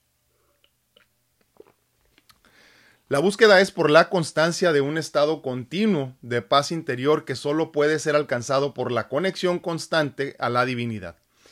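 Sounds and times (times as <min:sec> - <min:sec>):
soft gulp of water: 0:00.6 - 0:02.5
wet mouth clicks from sipping water: 0:00.6 - 0:02.5
brief breathy exhale: 0:02.4 - 0:03.0
speech: 0:03.1 - 0:11.2.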